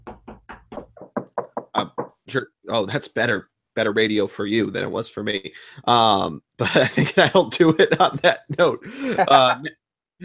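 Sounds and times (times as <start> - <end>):
knuckles knocking on wood: 0.0 - 2.2
speech: 2.3 - 10.2.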